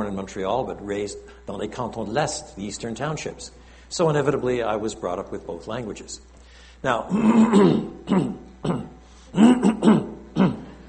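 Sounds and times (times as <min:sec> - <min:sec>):
speech: 0:00.0 - 0:10.6
person clearing a hoarse throat: 0:07.1 - 0:10.8.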